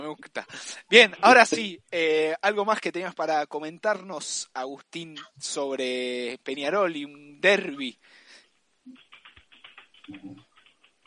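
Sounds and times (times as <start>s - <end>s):
speech: 0.1s - 8.2s, 10.1s - 10.4s
loud typing on a computer keyboard: 9.0s - 11.0s.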